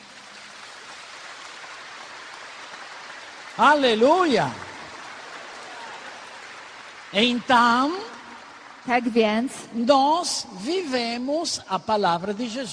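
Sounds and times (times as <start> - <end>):
rain falling: 0.0 - 12.7
speech: 3.6 - 4.6, 7.1 - 8.1, 8.8 - 12.7.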